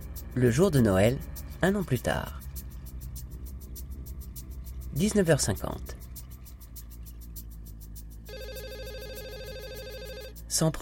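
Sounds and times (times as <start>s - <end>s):
speech: 0.4s - 2.4s, 5.0s - 6.0s, 10.6s - 10.7s
telephone ringing with trilling bell and electronic warble: 8.3s - 10.4s.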